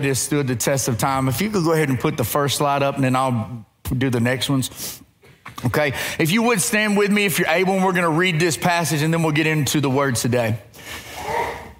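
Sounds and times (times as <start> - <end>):
speech: 0.0 - 5.0, 5.6 - 11.1
person sneezing in an audience: 11.1 - 11.7.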